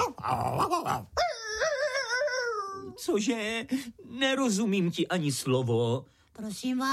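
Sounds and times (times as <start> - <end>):
small dog growling: 0.0 - 1.2
small dog whining: 0.0 - 3.0
speech: 0.2 - 1.2, 3.0 - 6.9.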